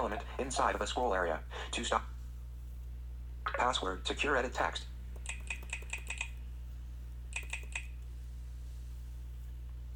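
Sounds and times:
speech: 0.0 - 2.2, 3.4 - 4.9
steady low electrical hum: 0.0 - 9.9
typing on a laptop keyboard: 5.2 - 6.4, 7.3 - 7.9.

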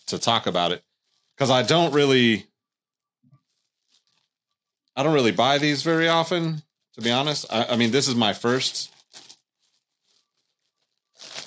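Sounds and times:
speech: 0.1 - 2.5, 5.0 - 9.2
package crinkling: 3.4 - 4.3, 7.0 - 11.4
package being ripped open by hand: 7.0 - 11.4.

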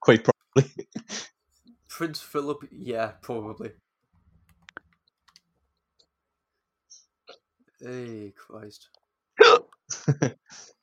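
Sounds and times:
speech: 0.0 - 1.3, 2.0 - 3.8, 7.8 - 10.8
sharp hiccup: 9.4 - 9.8.

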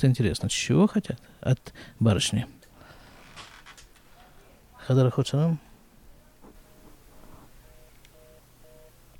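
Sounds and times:
speech: 0.0 - 2.6, 4.8 - 5.7
telephone busy signal beeps: 7.6 - 9.0.

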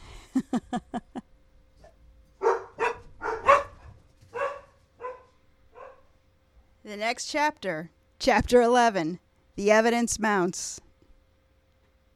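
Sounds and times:
speech: 0.4 - 1.0, 7.0 - 10.8
dogs barking: 2.4 - 6.1.

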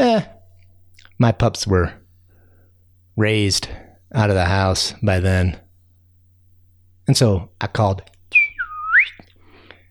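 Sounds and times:
speech: 0.0 - 0.3, 1.2 - 2.0, 3.2 - 5.6, 7.1 - 8.4
person whistling an imitation of a great horned owl call: 8.3 - 9.3.

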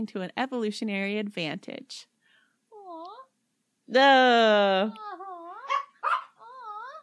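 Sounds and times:
speech: 0.0 - 2.1, 3.9 - 5.1
dog whimpering in a long wavering whine: 5.0 - 7.0
dog barking sharply: 5.6 - 6.4.

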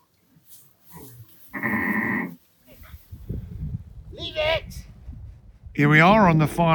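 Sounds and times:
sheep bleating on a farm in Cornwall: 1.5 - 2.4
speech: 5.8 - 6.7.

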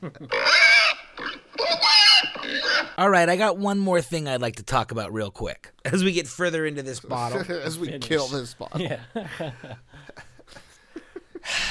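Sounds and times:
laughter: 0.0 - 0.5, 7.1 - 11.7
speech: 0.0 - 0.7, 3.0 - 10.3
pig oinking and squealing: 0.2 - 3.0.

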